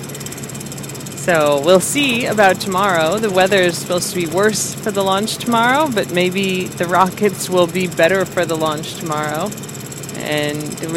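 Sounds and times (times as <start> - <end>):
bus engine idling: 0.0 - 10.9
speech: 1.2 - 10.9.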